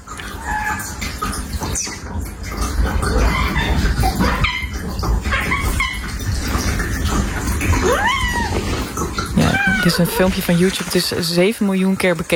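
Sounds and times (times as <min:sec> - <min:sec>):
running water: 0:00.0 - 0:12.3
cat making high-pitched meows and squeaky calls at its owner: 0:07.8 - 0:08.7, 0:09.4 - 0:10.9
speech: 0:10.0 - 0:12.3.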